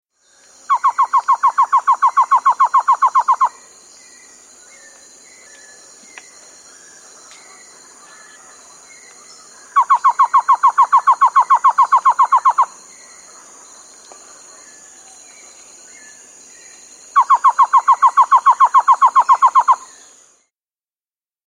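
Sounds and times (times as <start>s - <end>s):
Cocha Antshrike calling in South America: 0.7s - 3.6s, 9.6s - 12.8s, 17.2s - 19.9s.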